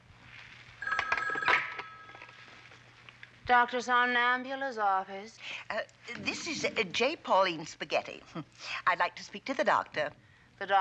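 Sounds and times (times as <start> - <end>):
telephone ringing with trilling electronic bell tone: 0.8 - 2.7
speech: 3.5 - 10.7.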